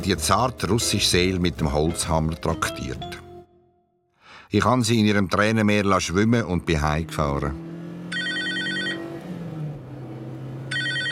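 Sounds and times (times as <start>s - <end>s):
speech: 0.0s - 3.2s, 4.5s - 7.7s
steady low hum of a car engine: 5.8s - 11.0s
telephone ringing in short electronic bursts: 8.1s - 9.0s, 10.7s - 11.0s.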